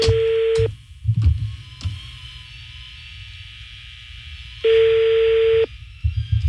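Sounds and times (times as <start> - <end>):
phone line ringback tone on an outgoing call: 0.0 - 0.7, 4.6 - 5.7
low rumbling hum: 0.0 - 6.4.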